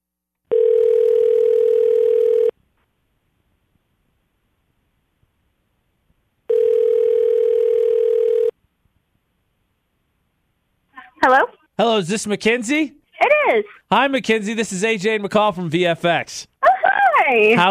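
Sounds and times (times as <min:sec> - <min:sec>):
steady telephone line tone: 0:00.5 - 0:02.5, 0:06.5 - 0:08.5
speech: 0:11.8 - 0:16.5, 0:17.3 - 0:17.6.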